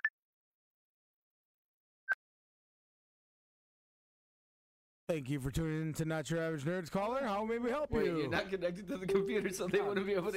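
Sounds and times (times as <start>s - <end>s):
speech: 5.1s - 10.3s
incoming phone call alert beeps: 9.1s - 10.3s.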